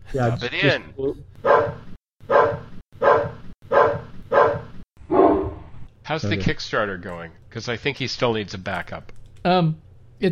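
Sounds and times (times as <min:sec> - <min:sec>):
speech: 0:00.1 - 0:01.8, 0:06.1 - 0:10.3
dog barking: 0:01.4 - 0:05.6.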